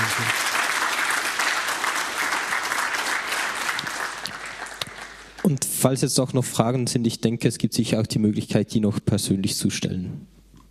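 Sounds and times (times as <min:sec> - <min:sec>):
audience applause: 0:00.0 - 0:05.6
speech: 0:05.5 - 0:10.4.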